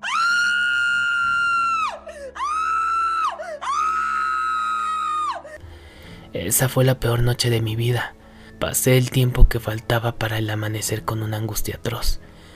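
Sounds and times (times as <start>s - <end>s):
terrified scream in a house at night: 0.0s - 5.6s
speech: 6.3s - 12.3s.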